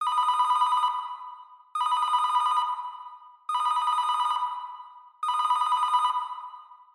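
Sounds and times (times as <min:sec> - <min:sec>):
telephone ringtone: 0:00.0 - 0:06.9.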